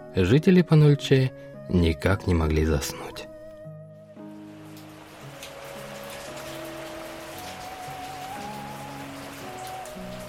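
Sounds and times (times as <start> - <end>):
soft sustained music: 0.0 - 10.2
speech: 0.2 - 3.3
heavy rain drumming on the ground: 4.5 - 10.2.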